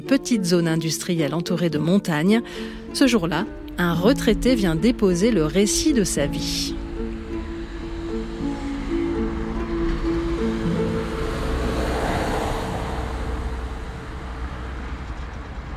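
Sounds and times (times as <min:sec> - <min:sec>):
speech: 0:00.1 - 0:06.8
car engine humming arriving at an industrial zone in Ambérieu-en-Bugey France: 0:02.4 - 0:15.7
broad rushing noise of an approaching car: 0:06.4 - 0:15.7.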